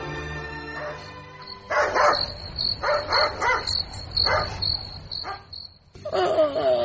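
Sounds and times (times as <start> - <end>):
dog barking at night: 0.7 - 4.6, 5.2 - 5.5
crickets chirring: 1.0 - 6.7.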